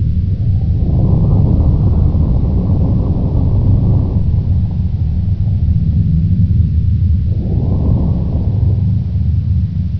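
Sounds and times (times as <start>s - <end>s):
low rumble: 0.0s - 9.9s.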